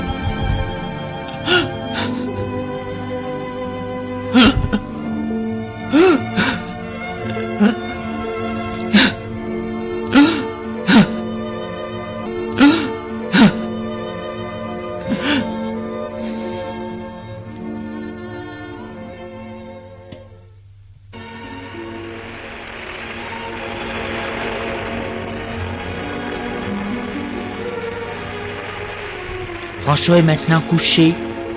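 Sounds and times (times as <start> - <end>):
steady sustained tonal background: 0.0 - 31.5
person lying on a bed sobbing and whimpering: 1.4 - 2.3, 4.3 - 4.9, 5.9 - 6.7, 7.6 - 7.9, 10.1 - 11.2, 12.6 - 13.7, 15.0 - 15.6
speech: 30.0 - 31.3.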